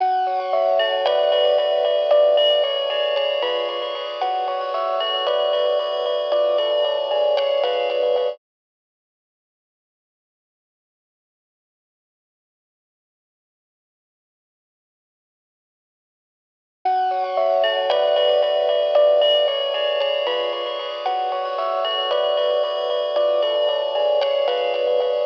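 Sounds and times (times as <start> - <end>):
bells with delay in a trap melody loop in F sharp minor: 0.0 - 8.4, 16.9 - 25.2.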